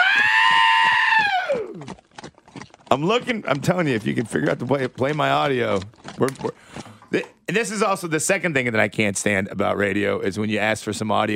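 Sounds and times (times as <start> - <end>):
goat screaming in a rock song parody: 0.0 - 1.9
speech: 2.9 - 11.3.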